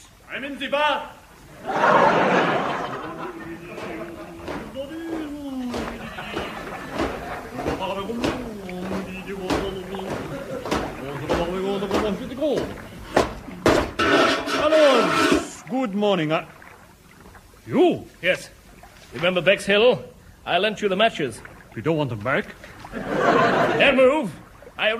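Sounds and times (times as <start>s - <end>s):
speech: 0.3s - 2.6s, 15.7s - 16.6s, 17.7s - 24.9s
person chuckling and murmuring: 2.6s - 11.4s
sharp knocks on a metal oven door: 3.2s - 14.6s.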